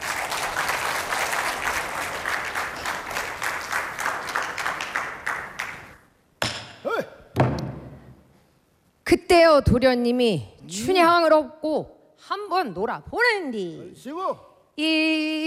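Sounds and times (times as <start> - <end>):
audience applause: 0.0 - 6.0
speech: 9.1 - 15.4.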